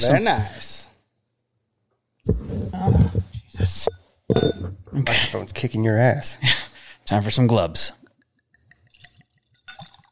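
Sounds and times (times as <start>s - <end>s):
speech: 0.0s - 0.8s, 3.6s - 8.0s
100-proof liquor poured into a glass: 8.3s - 10.1s.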